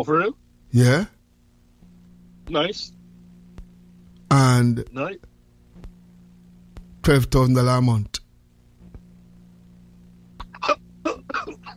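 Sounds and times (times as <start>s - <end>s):
speech: 0.0s - 1.2s, 2.5s - 3.0s, 4.3s - 5.3s, 7.1s - 8.2s
low steady hum: 0.0s - 11.7s
man coughing: 10.4s - 11.7s.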